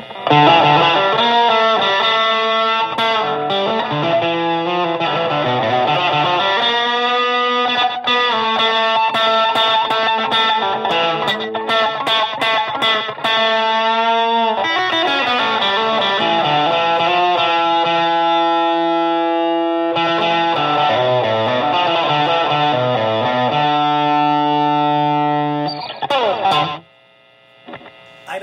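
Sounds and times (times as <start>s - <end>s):
distorted electric guitar through plexi-style overdrive with tones open: 0.0s - 28.4s.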